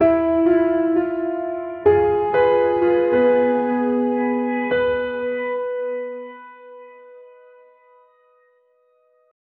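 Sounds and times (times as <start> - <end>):
cinematic instrumental music: 0.0 - 7.4.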